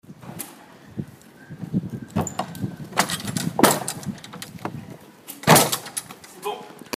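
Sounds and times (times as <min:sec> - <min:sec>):
shutters: 0:02.1 - 0:06.6.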